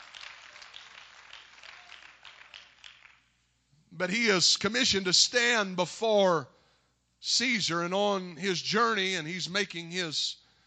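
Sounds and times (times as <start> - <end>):
audience clapping hands: 0.0 - 3.4
speech: 4.0 - 6.6, 7.2 - 10.4.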